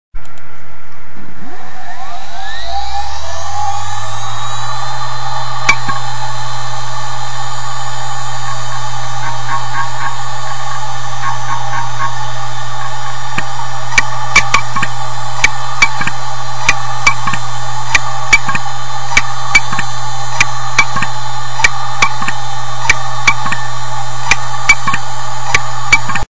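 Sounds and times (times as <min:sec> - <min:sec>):
IBM hard disk head landed on the platter scratching: 0:02.9 - 0:26.2
IBM hard disk head landed on the platter clicking: 0:05.6 - 0:06.1, 0:09.2 - 0:23.7, 0:24.3 - 0:26.2.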